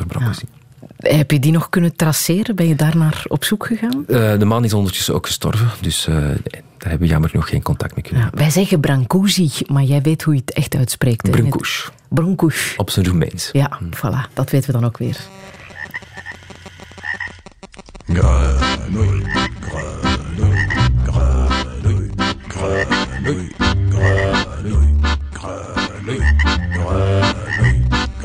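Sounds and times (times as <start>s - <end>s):
speech: 0.2s - 15.6s, 18.1s - 19.9s
loud dense chorus of frogs croaking: 15.3s - 17.9s, 18.5s - 24.6s, 25.6s - 27.9s.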